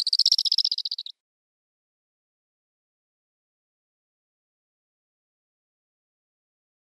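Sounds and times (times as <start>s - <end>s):
Black kite nestling giving a rapid dry chittering series: 0.0s - 1.1s.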